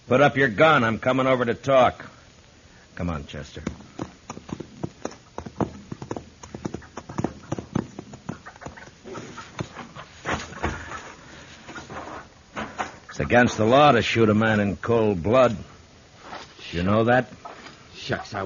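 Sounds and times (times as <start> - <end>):
speech: 0.1 - 2.2, 3.0 - 4.0, 13.2 - 15.7, 16.7 - 17.4, 18.0 - 18.4
rustle: 0.1 - 18.4
hooves of a horse being scared away clip-clopping: 3.3 - 11.0.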